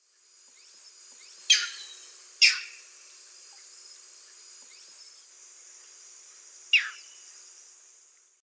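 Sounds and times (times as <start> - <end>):
Butorides striata call in the Eastern Lowlands of South America: 1.5 - 2.8, 6.8 - 7.2.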